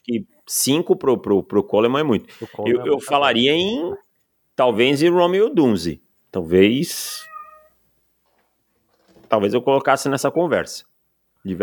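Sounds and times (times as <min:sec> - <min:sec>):
speech: 0:00.0 - 0:04.0, 0:04.6 - 0:07.3, 0:09.3 - 0:11.6
cat meowing at the door: 0:07.0 - 0:07.8.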